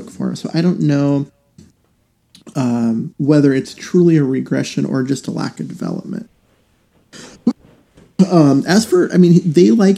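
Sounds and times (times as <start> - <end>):
speech: 0.2 - 1.4, 2.6 - 6.3, 8.2 - 9.9
raspy throat clearing: 7.1 - 8.4
short sharp coughing: 7.1 - 8.4.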